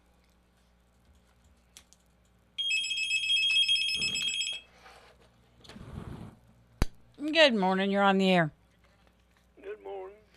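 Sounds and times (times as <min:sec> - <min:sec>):
telephone ringing with warbling electronic tone: 0:02.6 - 0:04.7
speech: 0:07.3 - 0:08.6.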